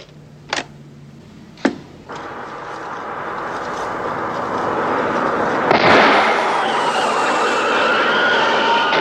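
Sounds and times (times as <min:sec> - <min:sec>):
rising roar building to a loud burst: 0:02.1 - 0:09.0
sustained rushing hiss: 0:02.1 - 0:09.0
two sharp gunshots: 0:02.1 - 0:09.0.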